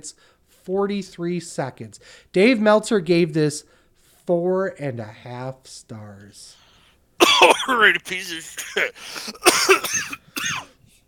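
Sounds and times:
speech: 0.0s - 6.6s, 7.4s - 10.7s
person coughing: 7.2s - 10.8s.

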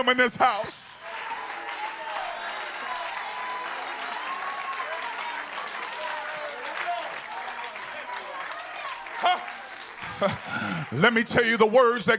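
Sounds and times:
speech: 0.0s - 0.9s, 10.2s - 12.1s
audience clapping hands in sustained applause: 0.0s - 12.1s
laughter: 9.2s - 11.2s.

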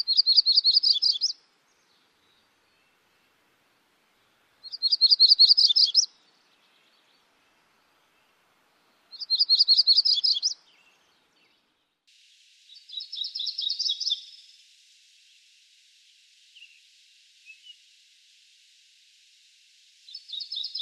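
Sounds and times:
MacGillivray's Warbler song: 0.0s - 20.8s.

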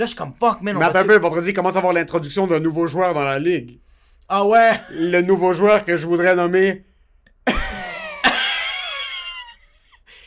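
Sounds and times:
speech: 0.0s - 6.9s
voice imitating a woman's heavy smoker's cough: 7.4s - 8.7s.

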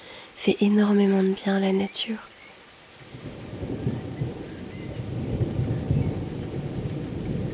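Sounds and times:
dense hiss of steady rainfall: 0.0s - 7.5s
speech: 0.4s - 2.3s
deep rumbling thunder: 3.1s - 7.5s.

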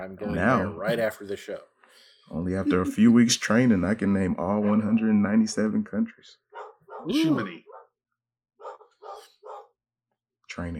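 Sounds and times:
speech: 0.0s - 7.7s, 10.6s - 10.7s
dog barking: 4.6s - 5.0s, 6.5s - 7.9s, 8.6s - 9.7s.

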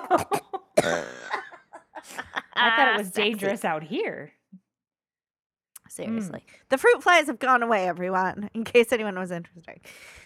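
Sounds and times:
person coughing outdoors after inhaling a bug: 0.0s - 1.7s
speech: 0.1s - 1.1s, 2.7s - 4.4s, 6.0s - 10.2s.

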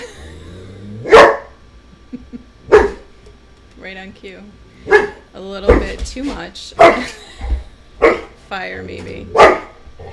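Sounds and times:
German shepherd dog barking: 1.0s - 1.6s, 2.7s - 3.1s, 4.9s - 5.2s, 6.8s - 7.1s, 8.0s - 8.4s, 9.3s - 10.1s
speech: 3.8s - 7.2s, 8.5s - 9.6s.

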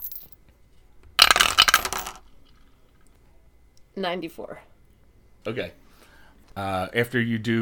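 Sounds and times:
dice clattering down a dice tower: 1.2s - 2.2s
speech: 4.0s - 4.7s, 5.4s - 5.8s, 6.6s - 7.6s.

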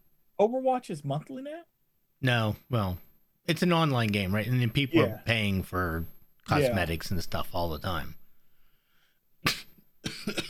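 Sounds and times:
speech: 0.4s - 8.2s
person sneezing with harsh spasms: 9.4s - 10.4s.

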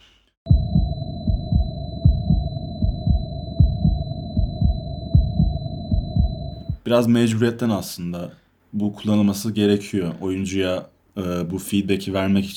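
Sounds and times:
video game high-pitched ear ringing tone: 0.5s - 6.8s
video game low-health heartbeat thumping: 0.5s - 6.9s
speech: 6.8s - 12.5s.

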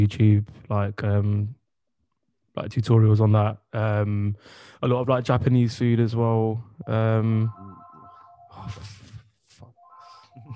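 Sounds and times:
speech: 0.0s - 1.6s, 2.6s - 7.7s, 8.6s - 9.0s
landline telephone ringing with an electronic tone: 6.9s - 8.8s.

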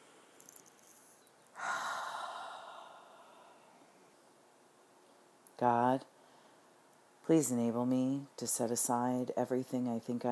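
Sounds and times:
deep breath in during prayer and meditation: 1.6s - 3.8s
speech: 5.6s - 6.2s, 7.3s - 10.2s.

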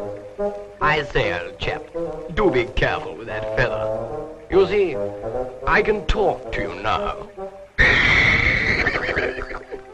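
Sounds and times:
speech: 0.0s - 7.5s
horse whinnying and snorting: 7.8s - 9.9s.

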